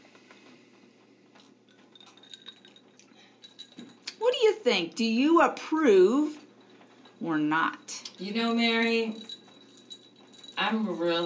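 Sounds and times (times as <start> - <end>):
soft hum: 0.0 - 11.2
glasses clinking in a toast: 1.9 - 4.2, 6.5 - 11.2
speech: 4.4 - 6.4, 7.2 - 9.3, 10.6 - 11.2.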